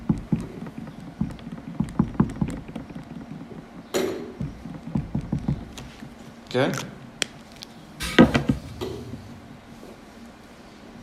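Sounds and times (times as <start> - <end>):
soft low thumps imitating footsteps: 0.0 - 6.4, 8.0 - 10.0
speech: 6.5 - 7.0.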